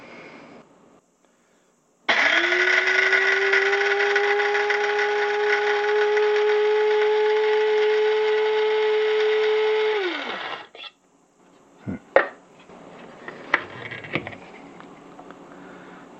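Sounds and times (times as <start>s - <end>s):
electric coffee grinder grinding coffee beans to a coarse grind: 2.1s - 10.8s.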